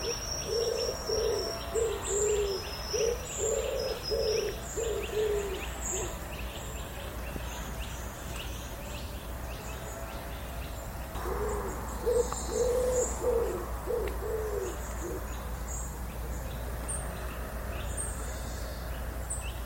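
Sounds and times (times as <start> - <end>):
common wood pigeon cooing: 0.0 - 6.3, 11.2 - 15.4
high chirps from other birds: 0.0 - 19.6
low hum: 9.8 - 18.4.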